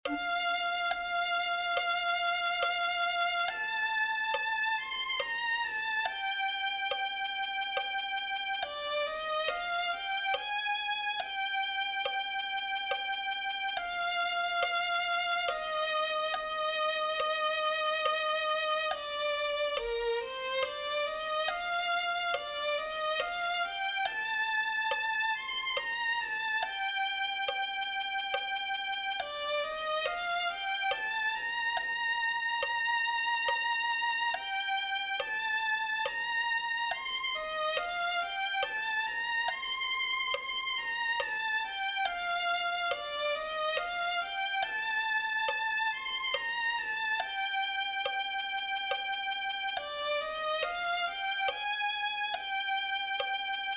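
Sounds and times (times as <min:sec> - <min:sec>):
violin playing a hymn: 0:00.0 - 0:53.7.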